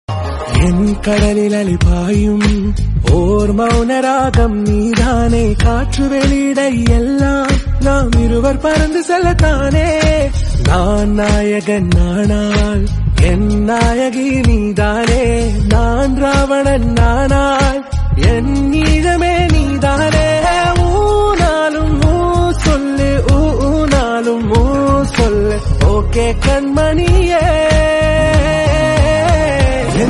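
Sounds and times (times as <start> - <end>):
romantic Telugu song ringtone: 0.1 - 30.0.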